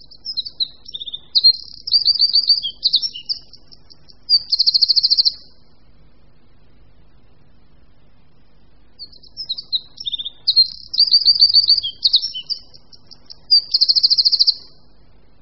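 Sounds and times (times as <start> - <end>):
Eurasian wren singing: 0.0 - 5.9, 8.9 - 15.0.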